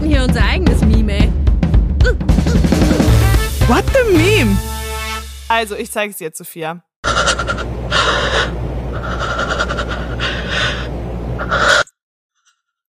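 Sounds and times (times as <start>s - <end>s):
speech: 0.2s - 1.3s, 3.7s - 4.7s, 5.5s - 6.9s
wild heavy breathing with moaning: 1.7s - 3.3s, 7.1s - 11.9s.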